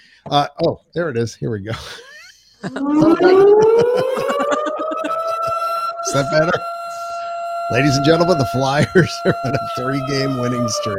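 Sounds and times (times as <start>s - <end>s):
speech: 0.2s - 4.4s, 6.1s - 6.7s, 7.7s - 10.9s
laughter: 1.6s - 10.9s
siren sound effect: 2.6s - 10.9s.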